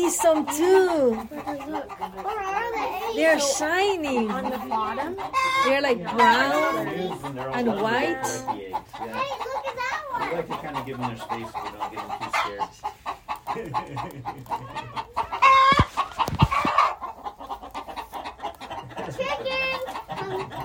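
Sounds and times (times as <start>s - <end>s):
speech: 0.0s - 15.4s
chickens clucking and squawking on a farm: 0.0s - 20.6s
laughter: 13.1s - 15.6s, 17.6s - 20.6s
chickens flapping wings: 15.6s - 17.0s.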